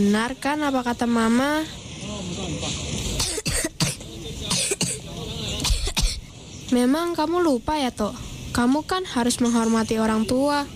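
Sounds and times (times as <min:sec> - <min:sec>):
speech: 0:00.0 - 0:03.0, 0:06.7 - 0:10.7
person coughing in a prolonged fit: 0:03.2 - 0:05.0.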